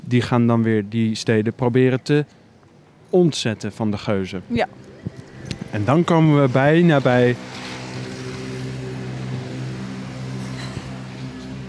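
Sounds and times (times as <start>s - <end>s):
speech: 0.1s - 2.4s, 3.1s - 4.9s, 5.7s - 7.6s
motor scooter engine droning: 4.8s - 11.6s.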